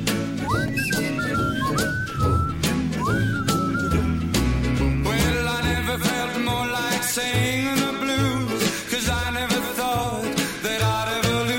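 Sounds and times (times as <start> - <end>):
full instrumental music backing with steady percussion: 0.0 - 11.5
person whistling a gliding sustained melody: 0.4 - 4.5.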